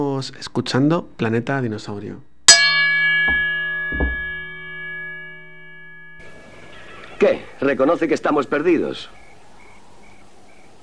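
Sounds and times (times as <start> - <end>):
speech: 0.0 - 2.3, 7.2 - 9.2
bell chime used as an intro: 2.5 - 7.2.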